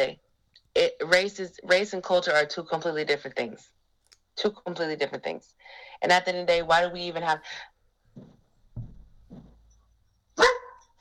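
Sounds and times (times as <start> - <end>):
speech: 1.1 - 3.8, 4.4 - 8.3
dogs barking at someone knocking on the door: 10.4 - 10.9.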